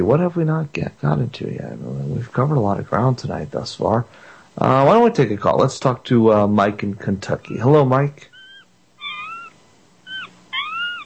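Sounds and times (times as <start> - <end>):
speech: 0.0 - 8.3
faint low hum: 0.0 - 11.0
cat meowing and wailing: 8.4 - 11.0.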